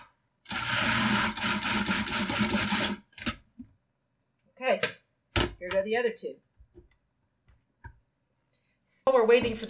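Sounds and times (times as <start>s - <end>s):
blender pulsing canned tomatoes: 0.5s - 3.0s
speech: 5.8s - 6.5s, 9.1s - 9.6s.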